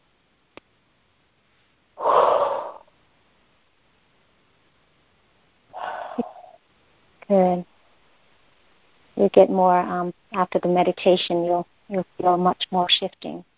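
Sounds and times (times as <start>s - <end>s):
deep breath taken in during a guided heart meditation: 2.0s - 2.9s, 5.8s - 6.6s
speech: 7.3s - 7.7s, 9.2s - 13.5s.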